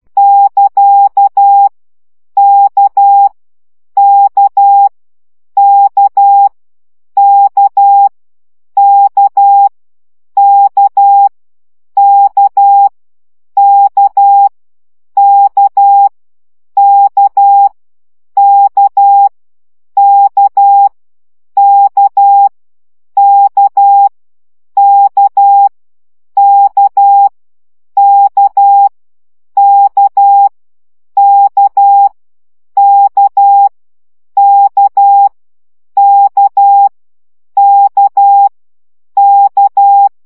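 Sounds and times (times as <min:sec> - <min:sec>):
slow Morse code practice at 10 baud: 0:00.2 - 0:01.7, 0:02.4 - 0:03.3, 0:04.0 - 0:04.9, 0:05.6 - 0:06.5, 0:07.2 - 0:08.1, 0:08.8 - 0:09.7, 0:10.4 - 0:11.3, 0:12.0 - 0:12.9, 0:13.6 - 0:14.5, 0:15.2 - 0:16.1, 0:16.8 - 0:17.7, 0:18.4 - 0:19.3, 0:20.0 - 0:20.9, 0:21.6 - 0:22.5, 0:23.2 - 0:24.1, 0:24.8 - 0:25.7, 0:26.4 - 0:27.3, 0:28.0 - 0:28.9, 0:29.6 - 0:30.5, 0:31.2 - 0:32.1, 0:32.8 - 0:33.7, 0:34.4 - 0:35.3, 0:36.0 - 0:36.9, 0:37.6 - 0:38.5, 0:39.2 - 0:40.1.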